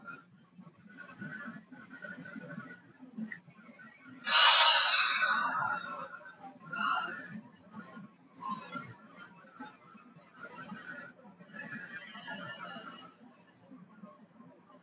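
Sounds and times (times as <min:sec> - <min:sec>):
long deep breath in through the nose: 0:04.3 - 0:06.1.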